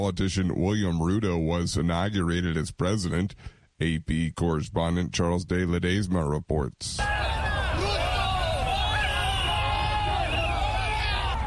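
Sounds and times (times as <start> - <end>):
speech: 0.0 - 7.5
dense crowd shouting outdoors: 7.0 - 11.4.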